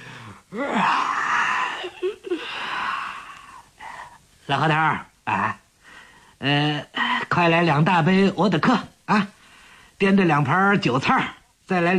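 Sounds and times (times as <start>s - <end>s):
man yawning with a groaning exhale: 0.2s - 4.0s
speech: 0.5s - 1.2s, 4.5s - 5.6s, 6.4s - 9.4s, 10.0s - 11.9s.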